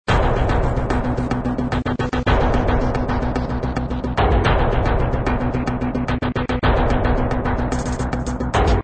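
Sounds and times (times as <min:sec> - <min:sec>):
sci-fi epic background music loop: 0:00.1 - 0:08.8.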